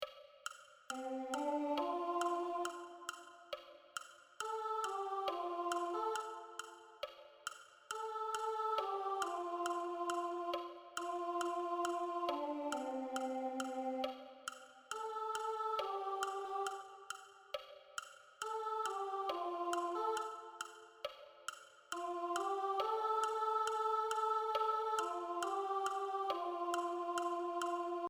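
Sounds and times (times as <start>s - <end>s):
soprano singing gospel: 0.9s - 3.7s, 4.4s - 7.2s, 7.9s - 17.4s, 18.4s - 28.0s.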